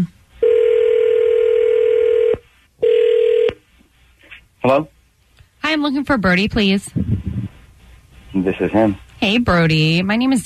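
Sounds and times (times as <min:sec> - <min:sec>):
telephone ringback tone: 0:00.4 - 0:03.5
speech: 0:04.6 - 0:04.9, 0:05.7 - 0:07.0, 0:08.4 - 0:10.4.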